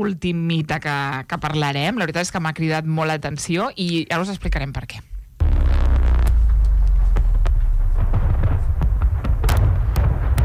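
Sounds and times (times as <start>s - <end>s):
speech: 0.0s - 5.1s
film explosion sound effect with deep sustained rumbling: 5.4s - 10.4s
sharp crackling bursts of explosion: 5.4s - 10.4s.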